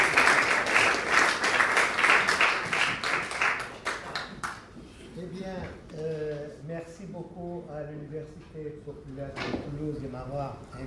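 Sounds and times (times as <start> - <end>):
audience applause at a public university lecture: 0.0 - 4.6
speech: 8.3 - 10.8.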